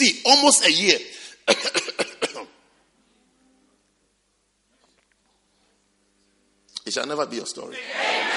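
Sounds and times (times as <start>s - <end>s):
speech: 0.0s - 1.1s, 6.9s - 8.2s
dry coughing: 1.4s - 2.6s.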